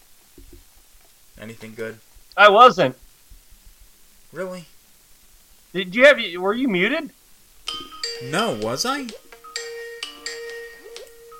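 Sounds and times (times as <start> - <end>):
speech: 1.4 - 3.0, 4.3 - 4.7, 5.7 - 9.2
Skype call ringtone, short melodic electronic chime: 7.7 - 11.3.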